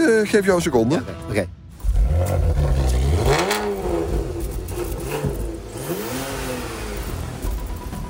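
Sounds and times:
speech: 0.1s - 1.6s
unused car engine starting outside, revving and idling roughly: 1.7s - 8.0s.

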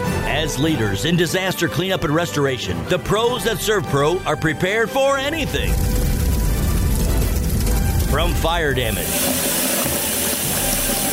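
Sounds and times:
speech: 0.4s - 5.9s, 8.1s - 9.5s
water running: 5.3s - 11.1s.

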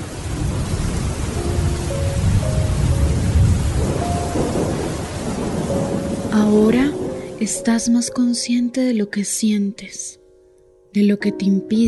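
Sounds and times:
wind and storm roaring: 0.0s - 8.0s
heavy rain pouring: 0.0s - 8.6s
speech: 6.4s - 10.2s, 10.9s - 11.8s.

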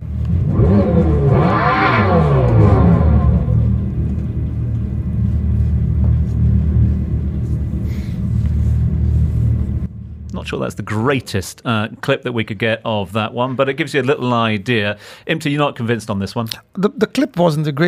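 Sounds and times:
electric muscle car synthetic exhaust revving: 0.0s - 9.9s
speech: 10.5s - 17.8s.

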